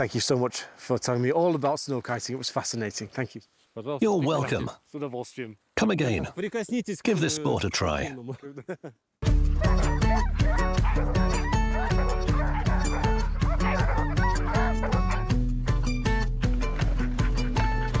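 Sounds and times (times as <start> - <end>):
speech: 0.0 - 12.0
large pack of sled dogs barking and yelping: 9.5 - 16.1, 16.8 - 17.9.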